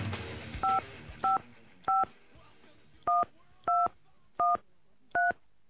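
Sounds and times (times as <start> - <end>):
touch-tone dialing beeps on a telephone: 0.6 - 2.1, 3.1 - 5.4.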